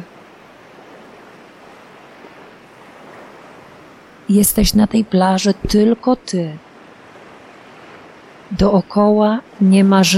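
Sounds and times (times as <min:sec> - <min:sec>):
ocean surf washing onto a beach: 0:00.0 - 0:10.1
speech: 0:04.3 - 0:06.7, 0:08.5 - 0:10.1.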